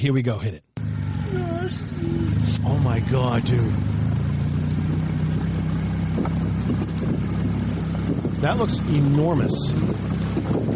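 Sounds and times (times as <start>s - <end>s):
speech: 0.0s - 4.1s, 6.2s - 7.4s, 8.4s - 10.7s
car engine rumble as car drives away at speed: 0.8s - 10.7s
faint clatter: 4.2s - 10.7s.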